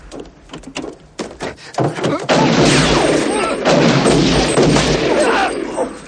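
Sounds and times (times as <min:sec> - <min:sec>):
gunfire in a crossfire shootout from a police action film: 0:02.2 - 0:06.0
rapid gunfire and blasts in a crossfire shootout from a police action film: 0:02.3 - 0:06.0.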